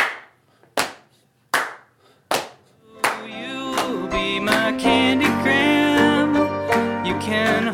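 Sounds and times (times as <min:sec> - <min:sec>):
knee slaps as percussion: 0:00.0 - 0:02.6
hand claps as percussion: 0:00.0 - 0:06.1, 0:06.7 - 0:07.6.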